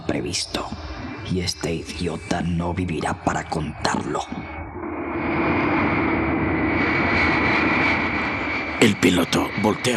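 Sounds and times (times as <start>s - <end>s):
airplane engines droning: 0.0s - 9.9s
speech: 0.1s - 4.6s, 8.8s - 9.9s.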